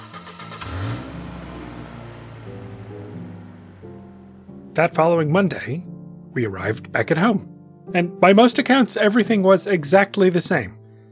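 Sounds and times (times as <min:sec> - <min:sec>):
car engine revving and driving away: 0:00.0 - 0:04.8
speech: 0:04.8 - 0:10.8.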